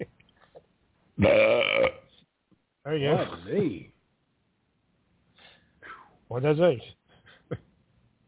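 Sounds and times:
speech: 0:01.2 - 0:01.8, 0:02.9 - 0:03.9, 0:06.3 - 0:07.6
loud drawn-out belch: 0:01.2 - 0:02.1.

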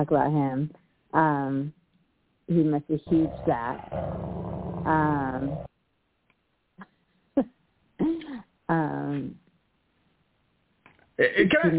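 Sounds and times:
speech: 0:00.0 - 0:01.8, 0:02.5 - 0:05.7, 0:08.7 - 0:09.4, 0:11.2 - 0:11.7
man imitating a dog growling with his voice: 0:03.1 - 0:05.7.

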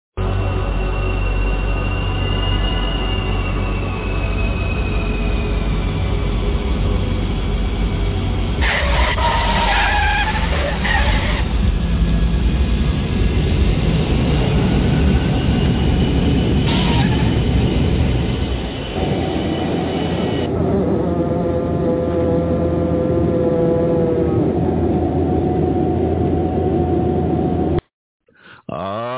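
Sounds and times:
airplane landing roar: 0:00.2 - 0:27.8
airplane tires screeching on landing: 0:08.6 - 0:20.5.

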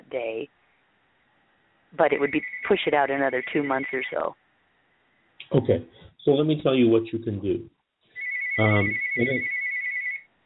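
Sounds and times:
speech: 0:00.1 - 0:00.6, 0:01.9 - 0:04.4, 0:05.4 - 0:07.8, 0:08.6 - 0:09.6
mobile phone ringtone: 0:02.2 - 0:04.2, 0:08.2 - 0:10.3.

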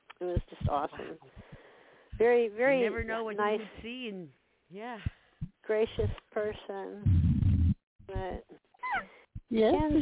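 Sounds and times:
speech: 0:00.2 - 0:01.5, 0:02.2 - 0:07.2, 0:08.1 - 0:08.5, 0:09.5 - 0:10.0
puppy whimpering: 0:08.8 - 0:09.1.

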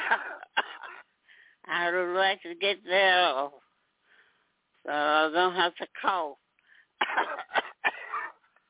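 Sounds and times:
woman coughing over a phone line: 0:00.0 - 0:01.1, 0:07.0 - 0:08.4
speech: 0:00.1 - 0:00.3, 0:01.8 - 0:03.6, 0:04.8 - 0:06.4.

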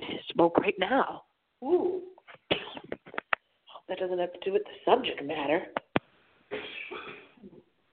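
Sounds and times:
speech: 0:00.3 - 0:02.1, 0:03.9 - 0:05.8
person coughing harshly: 0:02.5 - 0:03.0, 0:06.5 - 0:07.4.

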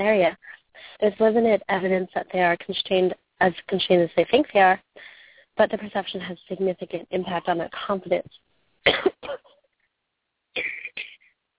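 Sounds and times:
speech: 0:00.0 - 0:09.5, 0:10.6 - 0:10.8
person coughing: 0:08.9 - 0:09.5, 0:10.6 - 0:11.2.

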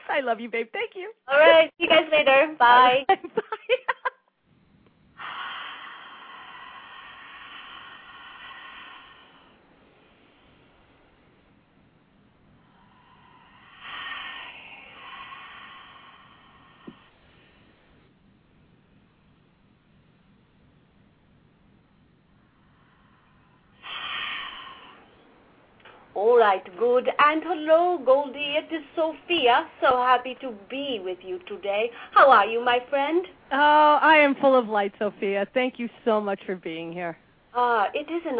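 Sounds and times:
hiss: 0:00.0 - 0:38.3
speech: 0:00.1 - 0:03.3, 0:26.8 - 0:38.3
slow deep breaths: 0:05.0 - 0:18.1, 0:22.3 - 0:26.2, 0:31.9 - 0:32.2.

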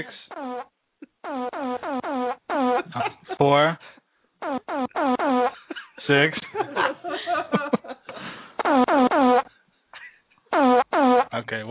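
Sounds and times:
speech: 0:00.0 - 0:00.7, 0:03.4 - 0:03.9, 0:06.1 - 0:06.5
loud fart sound effects: 0:00.0 - 0:02.9, 0:04.4 - 0:05.6, 0:08.6 - 0:09.5, 0:10.5 - 0:11.4
laughter: 0:02.8 - 0:03.4, 0:05.5 - 0:08.3.

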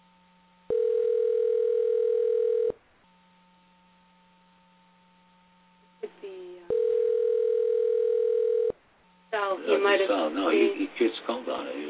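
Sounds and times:
faint hum: 0:00.0 - 0:11.8
telephone ringback tones: 0:00.7 - 0:02.8, 0:06.7 - 0:08.8.

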